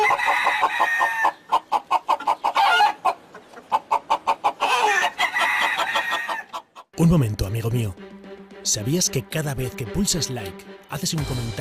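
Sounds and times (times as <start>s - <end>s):
rooster crowing in long strained calls in a cathedral in northern Spain: 0.0s - 1.4s, 2.6s - 3.0s, 4.6s - 6.6s
sharp hen clucks: 0.0s - 7.0s
speech: 7.0s - 8.0s, 8.7s - 11.5s.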